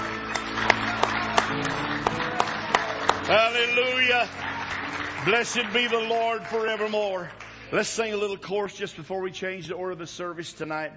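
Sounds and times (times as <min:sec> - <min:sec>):
church audience clapping in rhythmic unison during a worship service: 0:00.0 - 0:07.9
continuous wash of scattered applause: 0:00.0 - 0:08.5
speech: 0:03.3 - 0:04.5, 0:05.2 - 0:10.9.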